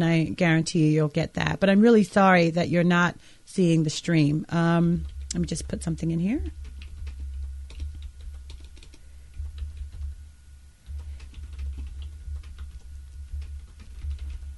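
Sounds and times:
speech: 0.0 - 6.6
steady low hum: 4.1 - 14.5
computer keyboard keys clicking: 5.0 - 10.2, 10.8 - 14.5.

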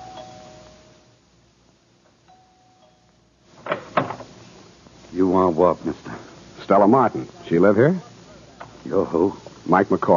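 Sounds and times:
house doorbell chiming with soft sustained tones: 0.0 - 0.9, 2.3 - 3.1
house door opening with a rattle and clunk: 3.6 - 4.3
speech: 5.2 - 8.1, 8.8 - 10.1.

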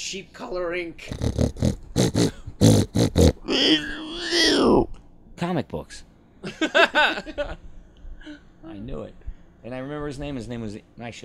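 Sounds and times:
speech: 0.1 - 2.7, 3.6 - 4.7, 5.4 - 11.2
person imitating truffle pig snorting: 1.0 - 4.9
person imitating a wavering squeal-like grunt: 1.1 - 4.9.

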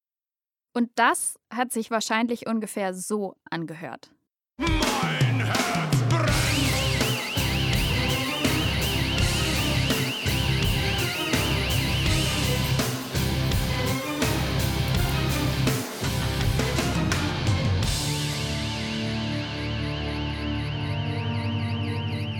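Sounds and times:
speech: 0.8 - 5.6
heavy metal music with pounding drums and distorted guitars: 4.6 - 22.3
wailing building burglar alarm tone: 6.3 - 13.1, 18.6 - 22.3.

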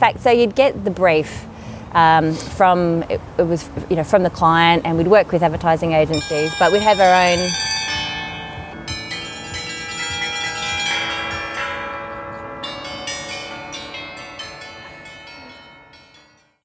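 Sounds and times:
speech: 0.0 - 7.7
church bells ringing: 6.1 - 16.6.

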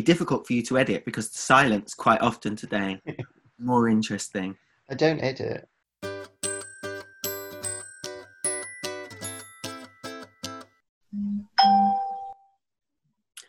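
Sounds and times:
speech: 0.0 - 5.7
new phone ringing with a rapid electronic ringtone: 6.0 - 12.4.

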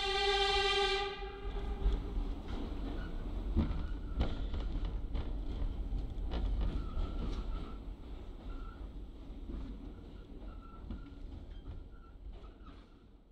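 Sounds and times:
horn-like tone: 0.0 - 2.3
subway train rumbling: 0.0 - 13.3.

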